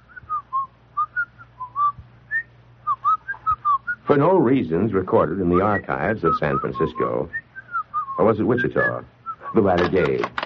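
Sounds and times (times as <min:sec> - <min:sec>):
person whistling a cheerful bouncy tune: 0:00.0 - 0:04.0, 0:06.3 - 0:08.2
faint low hum: 0:00.0 - 0:10.4
speech: 0:04.1 - 0:07.4, 0:08.2 - 0:10.4.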